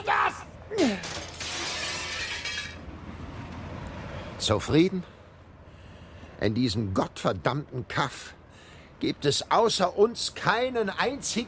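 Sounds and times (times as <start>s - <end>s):
window glass smashing: 1.0s - 2.8s
speech: 4.4s - 5.2s, 6.4s - 8.4s, 9.0s - 11.4s.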